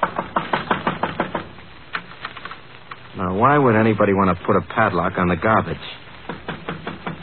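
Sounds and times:
knocking on a wooden shed door: 0.0s - 1.5s, 6.3s - 7.2s
speech: 3.3s - 6.0s.

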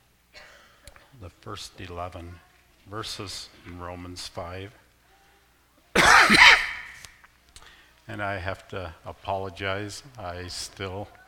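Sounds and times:
harsh lingering cough from a preacher during a sermon: 0.4s - 0.8s, 6.0s - 7.1s
speech: 1.2s - 4.8s, 8.1s - 11.2s.

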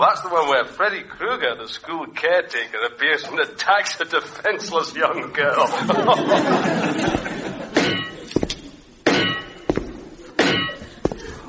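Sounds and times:
speech: 0.0s - 7.4s
laughter: 5.5s - 8.3s
clanking footsteps of a metal leg: 6.7s - 11.4s.

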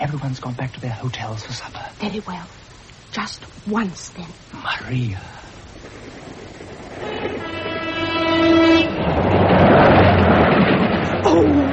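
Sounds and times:
speech: 0.1s - 6.0s
loud rumble of a passing train: 5.5s - 11.7s
train horn blaring a long steady note: 6.9s - 9.4s.

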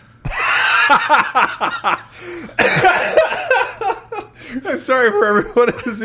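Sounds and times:
laughter: 0.3s - 4.4s
speech: 0.9s - 3.6s, 4.5s - 6.0s
loud harsh cough with rasping bursts: 2.6s - 3.5s.

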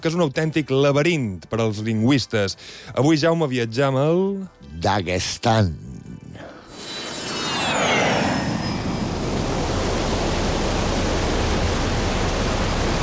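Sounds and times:
speech: 0.0s - 6.0s
high whistling gust: 6.6s - 9.7s
cold wind and rain in Dagestan: 8.5s - 13.0s.

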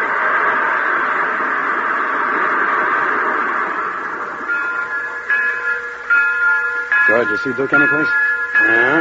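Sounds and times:
faint high tonal whine: 0.0s - 8.9s
steam train locomotive running: 0.0s - 8.9s
speech: 7.2s - 8.9s.

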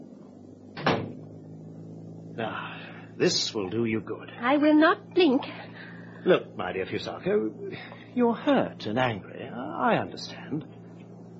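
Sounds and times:
faint steady hum: 0.0s - 11.3s
door closing thud: 0.7s - 1.3s
speech: 2.4s - 10.7s.

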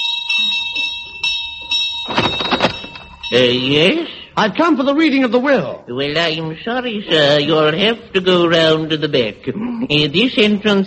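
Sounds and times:
electric doorbell at the front door of a house ringing: 0.0s - 4.0s
heavy clattering thump: 2.1s - 3.2s
speech: 3.3s - 10.8s.

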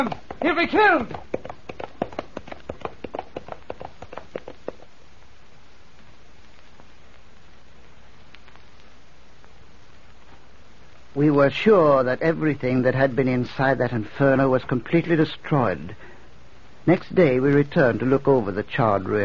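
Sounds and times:
speech: 0.0s - 1.3s, 11.2s - 16.1s, 16.8s - 19.2s
horse hooves galloping into the flames of a burning castle: 0.0s - 5.1s.

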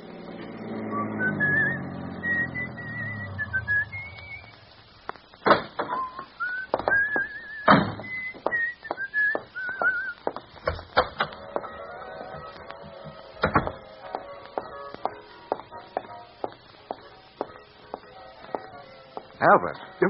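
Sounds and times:
man whistling a light cheerful melody: 0.9s - 4.6s, 5.9s - 10.2s
heavy thumps: 4.2s - 19.3s
speech: 19.4s - 20.0s.

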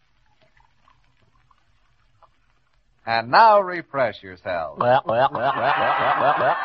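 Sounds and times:
Coca-Cola pouring from bottles into glasses with ice: 0.0s - 2.9s
speech: 3.1s - 6.6s
laughter: 4.8s - 6.6s.

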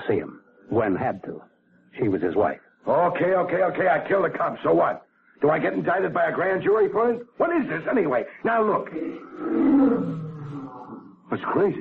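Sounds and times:
speech: 0.1s - 10.2s, 11.3s - 11.7s
lion roaring: 9.0s - 11.2s.

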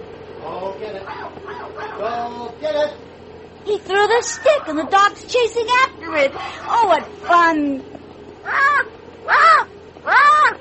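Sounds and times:
speech: 0.5s - 10.5s
black and white bird cawing: 1.0s - 2.3s, 4.2s - 5.1s, 5.7s - 7.5s, 8.3s - 10.5s.

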